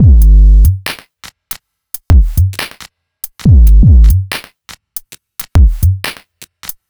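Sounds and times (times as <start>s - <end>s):
139 bpm deep break dubstep drum loop: 0.0s - 0.8s, 2.0s - 2.6s, 3.4s - 4.3s, 5.5s - 6.8s.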